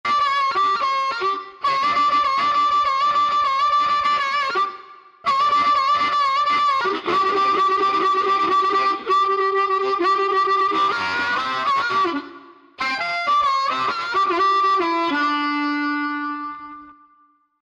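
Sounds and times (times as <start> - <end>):
blues harmonica: 0.0 - 17.2.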